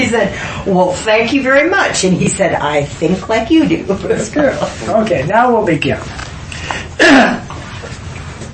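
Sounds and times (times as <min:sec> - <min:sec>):
speech: 0:00.1 - 0:06.2
throat clearing: 0:07.0 - 0:07.6.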